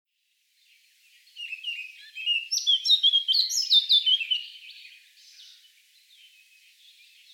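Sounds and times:
Eurasian blackcap Sylvia atricapilla singing: 1.4s - 5.6s.

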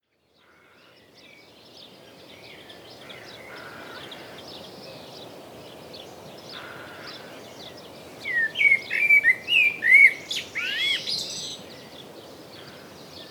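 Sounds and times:
common blackbird Turdus merula singing: 7.7s - 11.8s.

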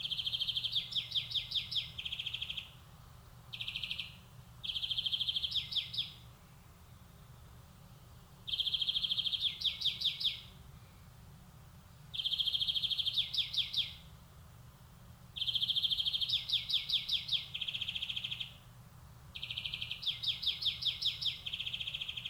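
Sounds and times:
European greenfinch Chloris chloris buzzy trills and rolling twitters: 0.0s - 2.8s, 3.5s - 6.2s, 8.5s - 10.5s, 12.1s - 14.1s, 15.4s - 18.6s, 19.4s - 22.2s.

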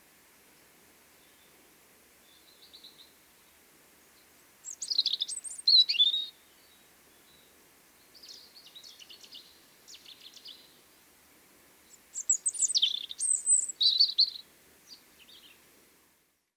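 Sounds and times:
European robin singing: 4.6s - 10.8s, 11.8s - 15.6s.

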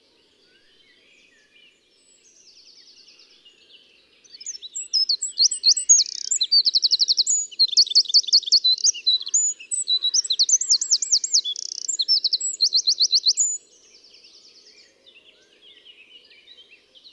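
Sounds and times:
Eurasian wren Troglodytes troglodytes singing: 4.3s - 13.7s.

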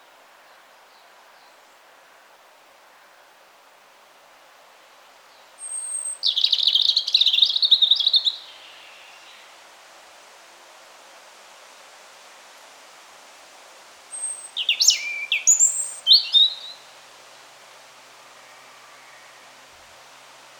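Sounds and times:
European robin Erithacus rubecula singing: 5.6s - 9.5s, 14.1s - 16.9s.

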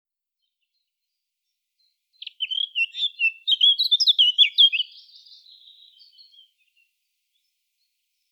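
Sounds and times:
Eurasian blackcap Sylvia atricapilla warbling song: 2.2s - 7.5s.

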